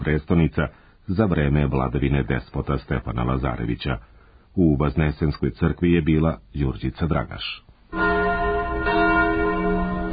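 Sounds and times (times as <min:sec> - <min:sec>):
speech: 0:00.0 - 0:08.1
church bells ringing during a religious ceremony in Belgrade: 0:07.9 - 0:10.1.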